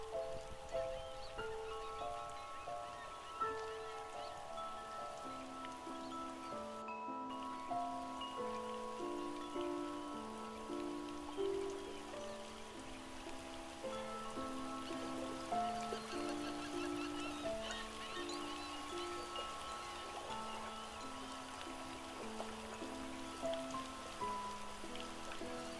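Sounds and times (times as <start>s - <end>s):
slow gentle melody of sustained tones: 0.0s - 25.7s
steady soft drizzling rain: 0.0s - 25.7s.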